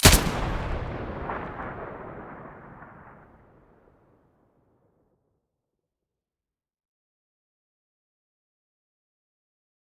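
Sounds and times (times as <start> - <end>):
AUG rifle shot: 0.0 - 3.8.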